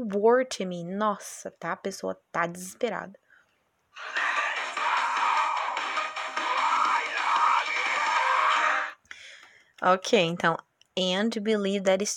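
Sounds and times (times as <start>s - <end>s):
speech: 0.0s - 3.2s, 9.8s - 12.1s
harsh raspy screamed vocal from a metal song: 4.0s - 9.0s.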